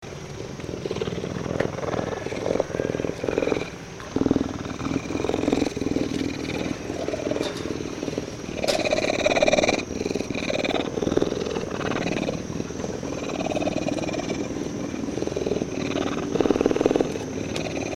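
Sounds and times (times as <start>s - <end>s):
puma purring at a zoo in Costa Rica: 0.0s - 17.9s.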